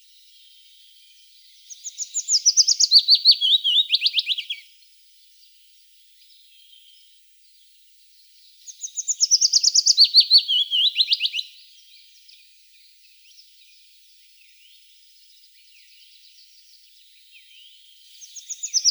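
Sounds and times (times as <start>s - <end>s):
willow warbler singing: 0.5s - 4.6s, 8.6s - 12.1s, 17.3s - 18.8s.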